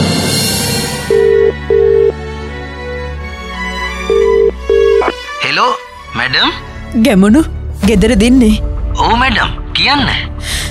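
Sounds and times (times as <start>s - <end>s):
music: 0.0s - 10.7s
telephone ringback tone of a call being placed: 1.1s - 2.2s, 4.1s - 5.1s
speech: 6.3s - 10.3s.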